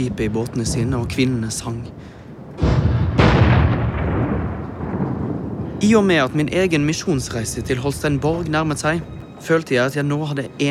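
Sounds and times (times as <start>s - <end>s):
speech: 0.0s - 2.2s, 5.8s - 10.6s
cannons firing a salute: 2.6s - 5.8s.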